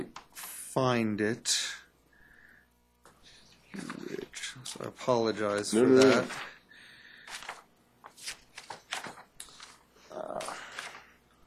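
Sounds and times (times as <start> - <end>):
speech: 0.8 - 1.7, 4.8 - 6.5
papers being shuffled and leafed through during a court hearing: 3.8 - 6.6, 7.2 - 11.2.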